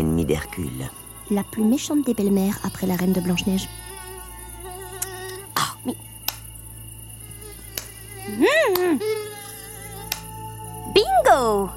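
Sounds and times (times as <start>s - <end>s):
speech: 0.0s - 3.9s, 5.8s - 6.0s
mosquito whining: 0.0s - 11.7s
hand slaps swatting at a mosquito: 6.3s - 6.5s, 7.7s - 8.0s, 8.7s - 9.0s, 10.1s - 10.3s.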